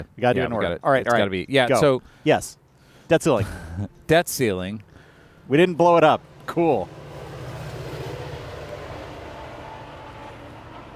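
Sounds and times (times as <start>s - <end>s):
speech: 0.0s - 4.9s, 5.5s - 7.0s
train rolling past with heavy rumble: 6.2s - 10.9s.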